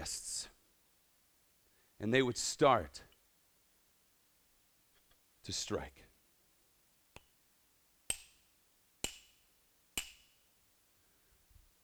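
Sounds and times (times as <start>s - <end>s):
speech: 2.0s - 3.1s, 5.4s - 6.1s
hammer striking a nail: 8.1s - 8.4s, 9.0s - 9.4s, 10.0s - 10.4s.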